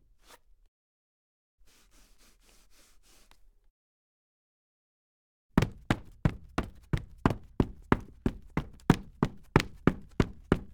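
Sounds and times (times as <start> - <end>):
footsteps in wood soft dress boots: 5.6 - 10.7.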